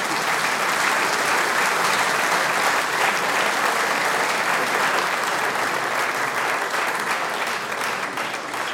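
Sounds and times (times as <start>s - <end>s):
audience applause for a brass band: 0.0s - 8.7s.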